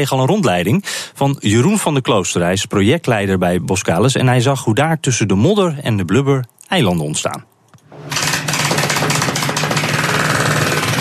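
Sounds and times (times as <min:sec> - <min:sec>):
speech: 0:00.0 - 0:08.1
construction workers breaking down a huge pipe with rattling hammer-like pounding: 0:07.9 - 0:10.9.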